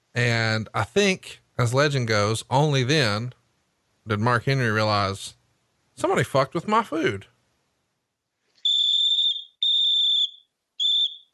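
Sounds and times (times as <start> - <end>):
speech: 0.2 - 3.4, 4.0 - 5.4, 6.0 - 7.3
sharp shrill whistle blasts trilling at a high pitch: 8.6 - 11.3.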